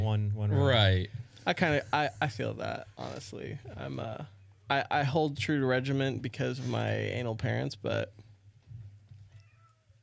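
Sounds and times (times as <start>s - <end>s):
speech: 0.1s - 8.2s
upset cat meowing to be let in: 9.3s - 10.0s.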